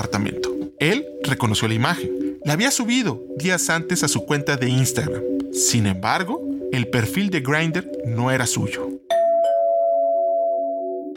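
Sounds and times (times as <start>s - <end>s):
speech: 0.0s - 9.0s
two-note doorbell chime: 9.1s - 11.1s.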